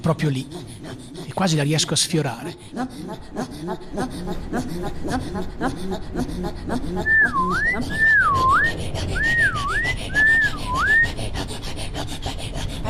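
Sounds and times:
speech: 0.0 - 0.7, 1.4 - 9.4
man whistling toward the sky by a fjord: 7.1 - 11.0.

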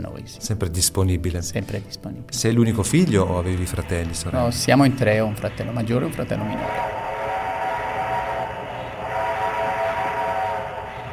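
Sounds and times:
speech: 0.2 - 7.0
old steam train rolling along the rails: 4.5 - 11.1
sustained tonal hum: 4.6 - 11.1.

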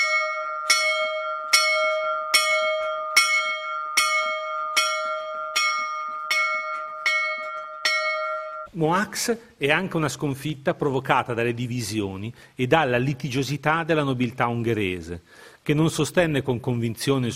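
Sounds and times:
single bell tolling a call to arms: 0.0 - 8.7
speech: 8.7 - 17.3.

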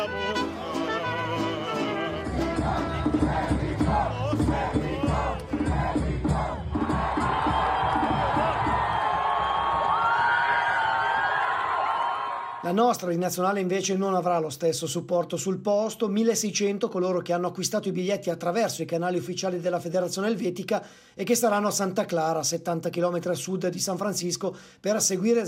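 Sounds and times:
large crowd of football fans cheering at a fan zone in San Diego: 0.0 - 12.7
large crowd of football fans chanting and whooping at a fan zone in San Diego: 0.3 - 9.0
speech: 12.7 - 25.4.

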